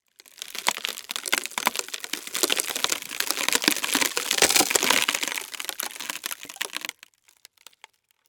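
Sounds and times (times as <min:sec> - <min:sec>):
wood cracking slowly: 0:00.0 - 0:08.2.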